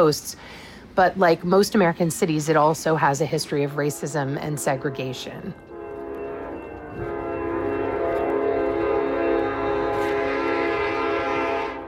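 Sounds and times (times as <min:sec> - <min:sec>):
speech: 0:00.0 - 0:05.7
rumble of a passing train: 0:00.0 - 0:11.8
train horn blaring: 0:03.6 - 0:11.8.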